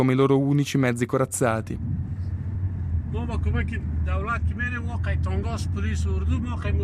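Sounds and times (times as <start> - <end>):
speech: 0.0 - 2.0, 3.1 - 6.8
Toyota station wagon engine drone, interior: 0.0 - 6.8
road rumble inside a moving Toyota station wagon: 0.0 - 6.8.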